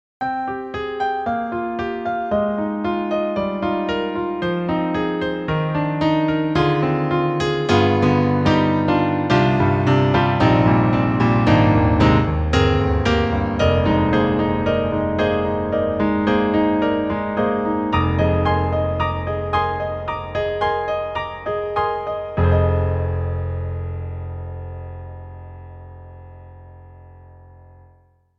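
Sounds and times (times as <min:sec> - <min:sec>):
Roland Juno-Gi stage piano: 0:00.2 - 0:27.6.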